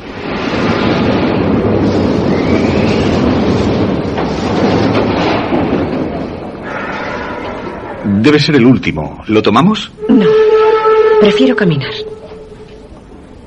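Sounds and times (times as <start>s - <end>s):
metro train entering a station, wheels clattering on rails: 0.0s - 13.4s
faint high squeal of metro train wheels: 6.6s - 8.2s, 10.0s - 12.9s
speech: 8.3s - 10.3s, 11.2s - 12.1s.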